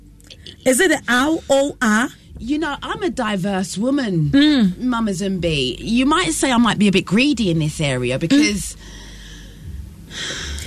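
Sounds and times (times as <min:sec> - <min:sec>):
speech: 0:00.7 - 0:09.0
heavy breathing: 0:08.8 - 0:10.6
person gasping: 0:08.8 - 0:10.6.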